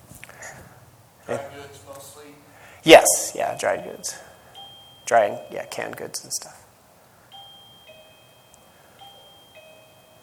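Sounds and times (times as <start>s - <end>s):
speech: 1.3s - 4.3s, 5.1s - 6.6s
bell with two-tone electronic chime: 3.5s - 6.0s, 7.3s - 10.2s.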